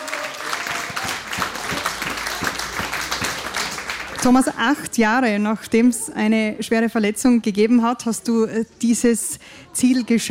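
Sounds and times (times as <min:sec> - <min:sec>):
audience applause: 0:00.0 - 0:04.7
speech: 0:04.2 - 0:10.2.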